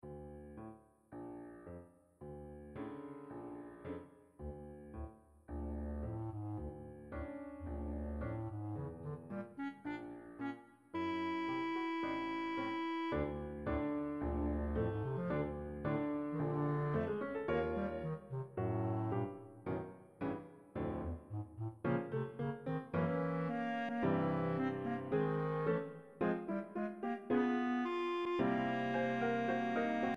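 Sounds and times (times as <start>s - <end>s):
piano: 0.0s - 30.1s
bassoon: 7.6s - 19.7s, 21.0s - 30.1s.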